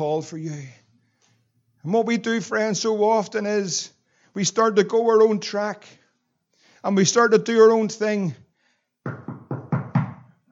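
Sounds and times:
speech: 0.0s - 0.8s, 1.8s - 6.0s, 6.8s - 8.4s
firm knocks on a wooden door: 9.1s - 10.3s.

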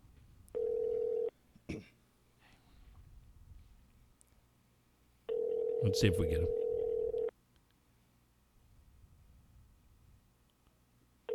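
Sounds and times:
telephone being dialed, steady electronic tone: 0.5s - 1.3s, 5.3s - 7.3s
speech: 5.8s - 6.6s.

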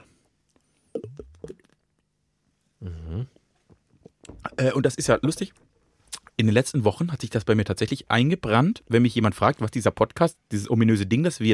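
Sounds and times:
person gulping beer after a toast: 0.5s - 2.1s, 2.8s - 4.6s
speech: 4.6s - 5.6s, 6.4s - 11.5s.

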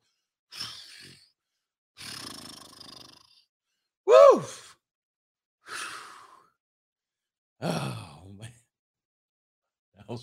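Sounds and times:
person imitating a roar: 4.1s - 4.6s, 7.6s - 8.1s.

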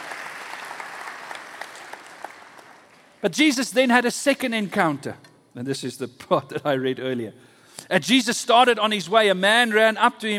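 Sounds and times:
room full of people applauding: 0.0s - 3.0s
speech: 3.2s - 10.3s.

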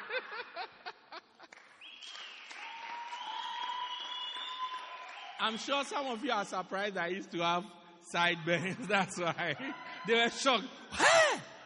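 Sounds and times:
laughter: 0.0s - 1.6s, 8.4s - 11.5s
audience clapping: 1.3s - 6.2s
crowd shouts and whoops: 2.5s - 5.5s
speech: 5.4s - 11.0s.

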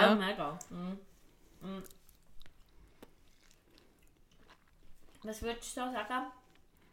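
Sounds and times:
speech: 0.0s - 2.0s, 5.2s - 6.4s
person chewing and smacking on a juicy mandarin: 0.6s - 5.4s, 6.4s - 6.9s
soft bites and mouth clicks: 0.6s - 5.5s, 6.4s - 6.9s.

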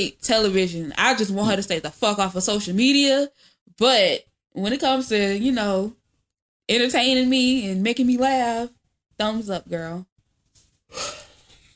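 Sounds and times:
speech: 0.0s - 6.0s, 6.7s - 10.1s, 10.9s - 11.2s
person yawning: 10.9s - 11.4s.

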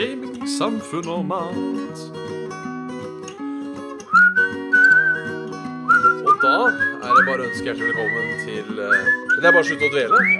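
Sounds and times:
speech: 0.0s - 2.4s, 6.4s - 10.3s
loud clear whistling melody: 4.0s - 10.3s.

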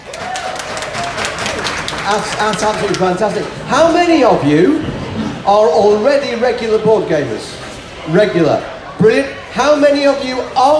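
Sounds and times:
audience applauding: 0.0s - 4.2s
speech: 2.1s - 10.7s.

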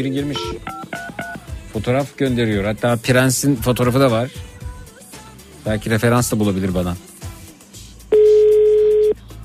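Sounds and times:
speech: 0.0s - 1.0s, 1.7s - 4.6s, 5.6s - 7.1s
ringback tone of an outgoing phone call: 0.3s - 1.4s, 8.1s - 9.2s.

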